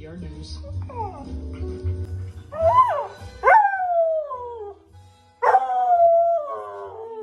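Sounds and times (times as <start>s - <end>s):
low musical backing: 0.0s - 7.2s
dog howling along to theme song: 2.5s - 4.8s, 5.4s - 7.2s.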